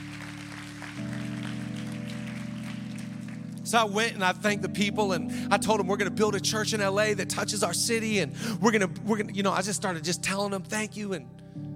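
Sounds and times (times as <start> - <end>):
crowd clapping: 0.0 - 3.8
sustained keyboard chords: 0.0 - 11.7
speech: 3.7 - 11.4.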